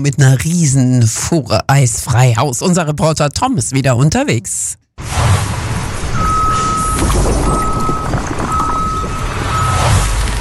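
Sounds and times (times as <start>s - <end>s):
speech: 0.0s - 5.4s
rumbling engine noise at a towing service: 5.0s - 10.3s
ambient outdoor clatter at a towing service: 5.3s - 10.3s
tow truck reversing alarm beeps: 6.2s - 10.0s.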